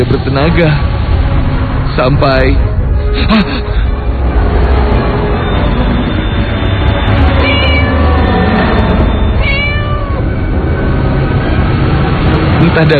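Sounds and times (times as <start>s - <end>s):
road noise: 0.0s - 12.9s
speech: 0.1s - 0.9s, 2.0s - 3.8s, 12.8s - 12.9s
cat meowing in front of a motorbike: 7.3s - 8.4s, 9.1s - 10.5s.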